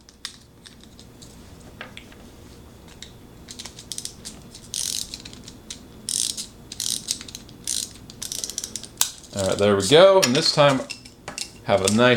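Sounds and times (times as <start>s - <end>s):
ratcheting clicks of a clockwork pencil sharpener being wound up: 3.5s - 9.6s
speech: 9.4s - 10.9s, 11.7s - 12.1s.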